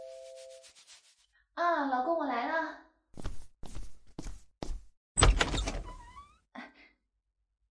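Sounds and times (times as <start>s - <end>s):
speech: 1.6s - 2.8s
heavy footsteps on a floor: 3.2s - 5.0s
door opening with a rattling clatter and squeaky scrape: 5.2s - 6.5s.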